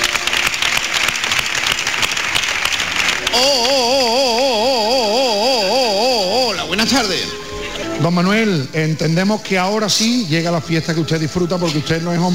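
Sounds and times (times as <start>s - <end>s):
crowd clapping in dense continuous applause: 0.0s - 6.3s
speech: 6.9s - 7.4s, 8.0s - 12.3s.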